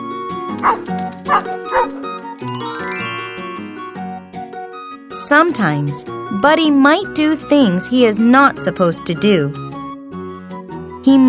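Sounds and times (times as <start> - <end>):
steady music: 0.0 - 11.2
dog barking: 0.6 - 2.0
speech: 0.6 - 3.1, 5.3 - 9.7, 11.1 - 11.2
bright rising chiming tone: 2.4 - 4.8.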